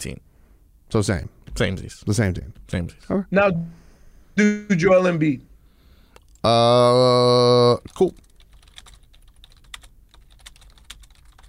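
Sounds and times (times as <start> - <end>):
speech: 0.0 - 0.3, 0.9 - 3.8, 4.4 - 5.5, 6.4 - 8.2
fast typing on a computer keyboard: 7.8 - 11.4.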